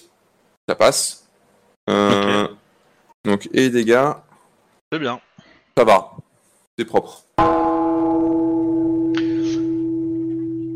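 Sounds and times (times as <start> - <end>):
speech: 0.7 - 1.2, 1.9 - 2.5, 3.4 - 4.2, 4.9 - 6.2, 6.8 - 7.7
bell ringing to wake sleepers: 7.4 - 10.7.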